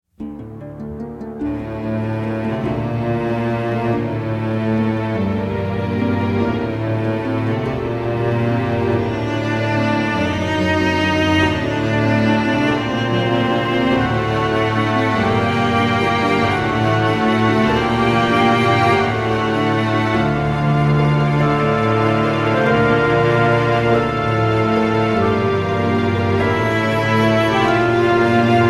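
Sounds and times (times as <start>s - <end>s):
campaign music: 0.2s - 28.6s.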